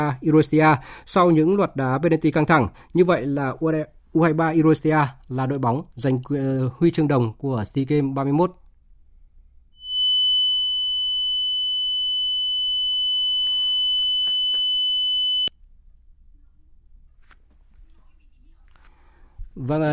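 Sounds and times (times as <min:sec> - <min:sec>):
speech: 0:00.0 - 0:08.6, 0:19.6 - 0:19.9
loud steady electronic test tone from broadcast signal loss: 0:09.8 - 0:15.5.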